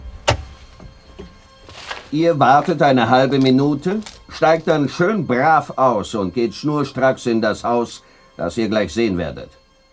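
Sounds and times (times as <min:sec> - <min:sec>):
van rear door opening: 0:00.0 - 0:04.3
speech: 0:02.1 - 0:09.6.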